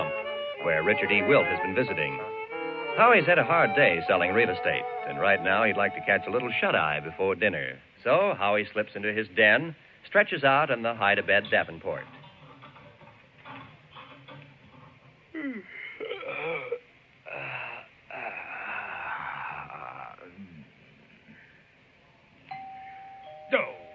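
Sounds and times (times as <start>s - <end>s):
speech: 0.6s - 2.4s, 3.0s - 12.2s
vocal sounds: 15.3s - 21.6s
breathy wheezing noises: 15.3s - 21.8s
doorbell ringing with a sustained chime: 22.5s - 23.9s.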